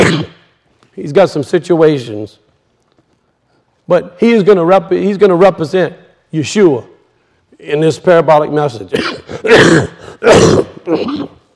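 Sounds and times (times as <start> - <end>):
man clearing his throat: 0.0 - 0.4, 8.9 - 11.5
man coughing in harsh rasping bursts: 0.0 - 0.4, 8.9 - 11.5
speech: 1.0 - 2.4, 3.9 - 6.9, 7.6 - 11.4.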